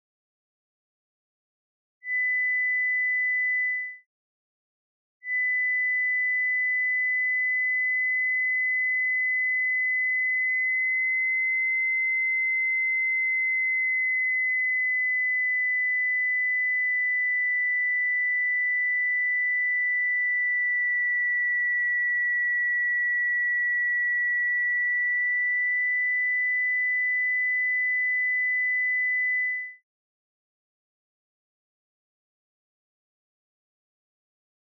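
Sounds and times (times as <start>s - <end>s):
2kHz sine tone repitched plus or minus 50 cents: 2.0s - 4.1s, 5.2s - 29.9s.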